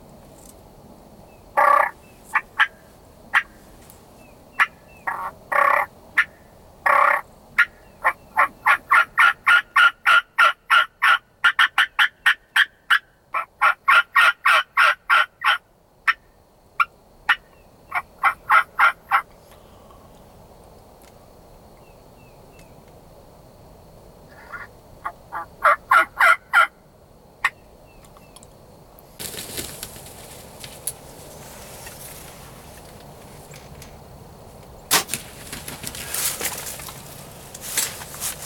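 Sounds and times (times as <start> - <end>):
hunter making turkey-style game calls from a hunting blind: 1.6 - 3.6, 4.5 - 16.2, 16.8 - 20.0, 24.3 - 26.8, 27.4 - 28.4.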